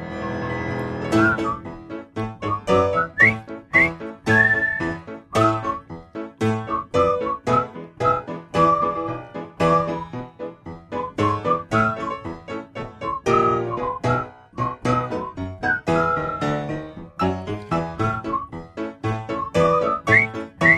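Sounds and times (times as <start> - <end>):
several people whistling a bouncy tune: 0.1 - 1.7, 2.4 - 5.9, 6.6 - 10.2, 11.0 - 12.4, 13.0 - 18.7, 19.3 - 20.7.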